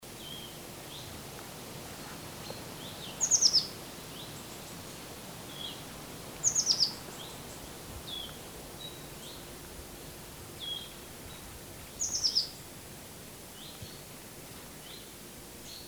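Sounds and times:
background hiss: 0.0s - 15.8s
Eurasian blue tit Cyanistes caeruleus calls: 6.4s - 7.0s.

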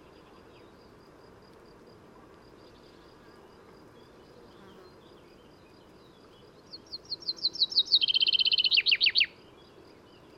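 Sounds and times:
common chaffinch Fringilla coelebs singing: 4.0s - 10.3s.

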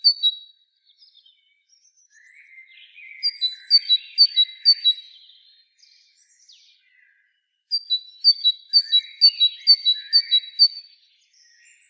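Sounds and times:
great tit Parus major whistling a two-note motif: 0.0s - 0.4s, 3.1s - 5.2s, 7.7s - 10.9s.

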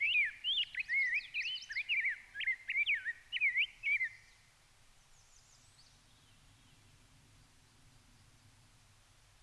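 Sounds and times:
Pheucticus ludovicianus Rose-breasted Grosbeak song in Minnesota: 0.0s - 8.7s.

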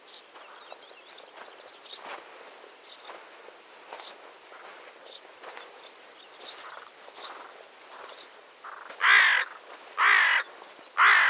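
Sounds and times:
small birds giving faint high chirps: 0.0s - 11.2s
Carrion crow Corvus corone cawing harshly: 8.6s - 11.2s.

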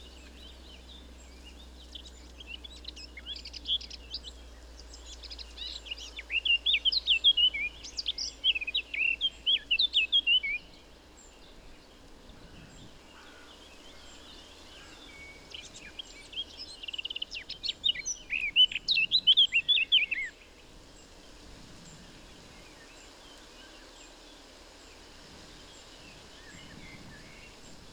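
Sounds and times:
Eurasian blackcap Sylvia atricapilla warbling song: 0.0s - 10.8s, 14.0s - 20.4s.

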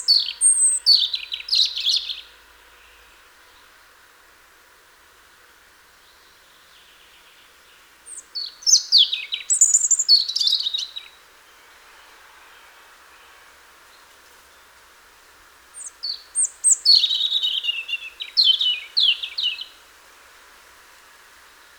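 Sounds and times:
European robin Erithacus rubecula singing high liquid trills and thin whistles: 0.0s - 2.2s, 8.1s - 11.1s, 15.8s - 19.7s.

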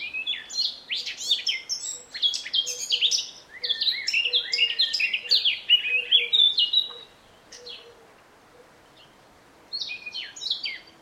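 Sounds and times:
Eurasian blackcap Sylvia atricapilla warbling song: 0.0s - 8.0s, 9.7s - 10.9s.

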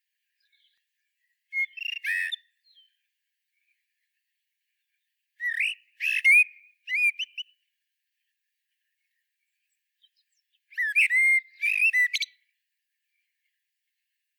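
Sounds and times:
Common blackbird singing, Turdus merula: 0.0s - 14.3s.

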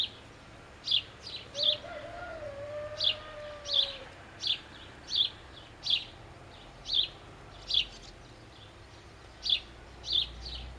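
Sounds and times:
house sparrow Passer domesticus chirping: 0.0s - 2.1s, 2.9s - 10.7s.

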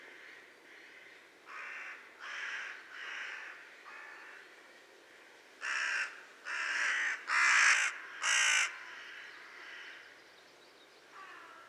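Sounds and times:
Carrion crow Corvus corone cawing: 0.1s - 4.3s, 5.6s - 10.0s, 11.2s - 11.6s.

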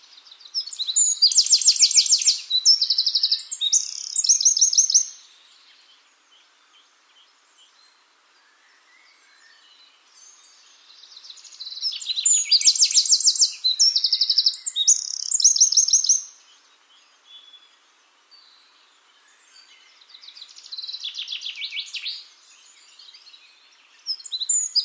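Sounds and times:
Eurasian wren Troglodytes troglodytes singing high rapid trills and buzzy rattles: 0.0s - 6.0s, 10.3s - 17.7s, 19.5s - 24.8s.

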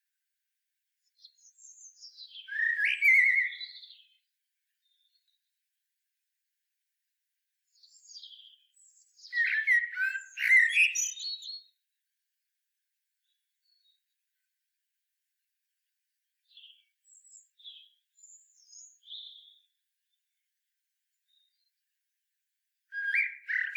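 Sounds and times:
common blackbird Turdus merula singing: 1.2s - 4.2s, 7.8s - 11.7s, 16.5s - 19.7s, 22.9s - 23.7s.

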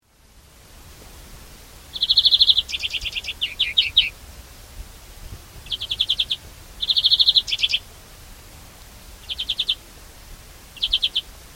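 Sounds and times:
European greenfinch Chloris chloris calls: 1.9s - 4.2s, 5.6s - 7.9s, 9.2s - 9.8s, 10.8s - 11.3s.

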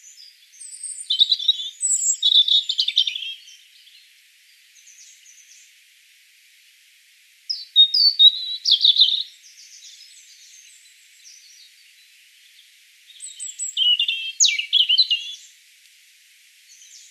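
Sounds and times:
European robin Erithacus rubecula singing high warbles and trills: 0.0s - 4.0s, 7.5s - 15.5s.

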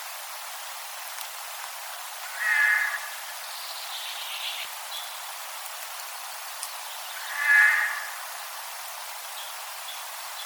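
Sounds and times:
faint hiss: 0.0s - 10.4s
Eurasian jay Garrulus glandarius screeching: 7.2s - 8.3s.

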